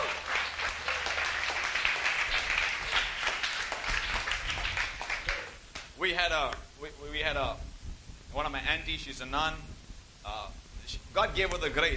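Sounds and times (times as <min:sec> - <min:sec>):
audience applauding: 0:00.0 - 0:05.9
speech: 0:06.0 - 0:07.7, 0:08.4 - 0:11.9.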